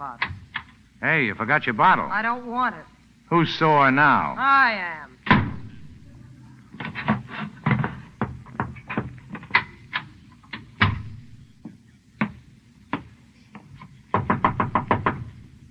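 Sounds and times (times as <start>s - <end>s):
speech: 0.0s - 0.4s, 1.0s - 5.1s
low rumble: 0.0s - 13.4s
knocking on an unlocked door: 5.3s - 6.1s, 6.8s - 9.8s, 10.8s - 13.1s, 14.1s - 15.6s.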